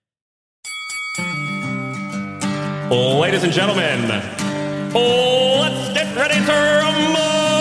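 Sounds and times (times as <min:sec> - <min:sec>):
bright metal bell ringing at a fight: 0:00.6 - 0:02.6
speech: 0:02.9 - 0:07.5.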